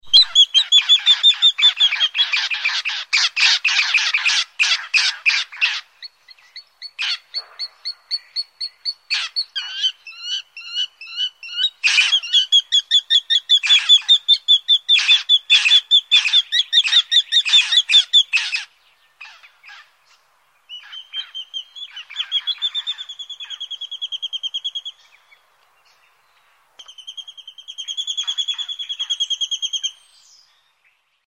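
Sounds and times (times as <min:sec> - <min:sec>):
collared sparrowhawk calls: 0:00.0 - 0:31.1.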